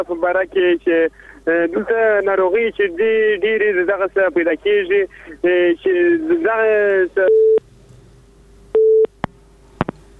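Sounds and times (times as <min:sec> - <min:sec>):
speech: 0:00.0 - 0:07.5
telephone busy signal after a call disconnects: 0:08.8 - 0:09.1.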